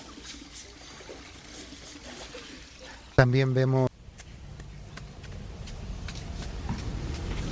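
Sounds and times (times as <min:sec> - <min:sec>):
water trickling at a public spring: 0:00.0 - 0:03.9
speech: 0:03.2 - 0:03.9.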